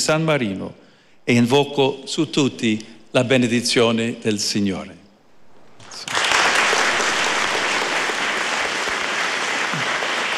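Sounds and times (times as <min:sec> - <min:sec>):
speech: 0:00.0 - 0:05.0
large crowd applauding after a speech: 0:05.8 - 0:10.3.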